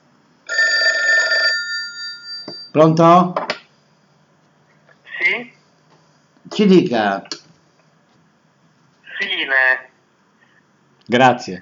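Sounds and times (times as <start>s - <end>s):
telephone ringing for an incoming call: 0.5s - 2.8s
speech: 2.8s - 3.4s, 6.6s - 7.3s, 11.1s - 11.5s.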